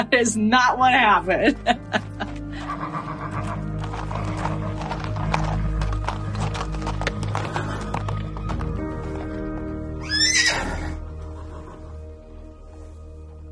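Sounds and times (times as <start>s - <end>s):
speech: 0.0s - 2.3s
horse hooves clip-clopping: 1.9s - 12.0s
horse neighing: 2.5s - 5.4s, 10.0s - 12.0s.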